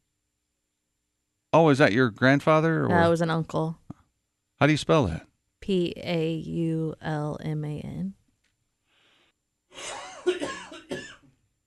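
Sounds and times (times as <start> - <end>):
speech: 1.5 - 3.8, 4.6 - 8.2, 9.7 - 11.0
harsh raspy coughing: 9.8 - 11.3.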